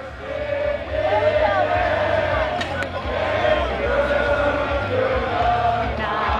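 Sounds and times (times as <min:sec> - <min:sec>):
outdoor crowd cheering at a mountain bike race: 0:00.0 - 0:06.3.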